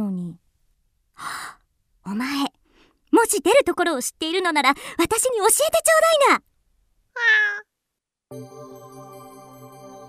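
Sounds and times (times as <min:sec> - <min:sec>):
speech: 0:02.1 - 0:02.5, 0:03.2 - 0:06.5, 0:07.2 - 0:07.7, 0:08.3 - 0:08.8
cat meowing: 0:07.2 - 0:07.7.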